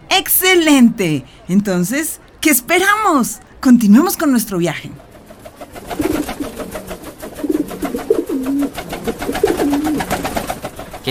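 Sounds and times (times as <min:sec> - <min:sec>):
speech: 0:00.2 - 0:05.1
pigeons cooing: 0:05.1 - 0:11.0.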